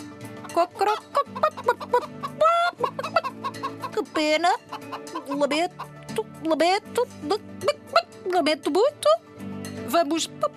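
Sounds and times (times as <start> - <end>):
rooster clucking: 0.5 - 6.0
speech: 0.6 - 2.1, 4.2 - 7.5, 8.3 - 9.1, 9.9 - 10.5.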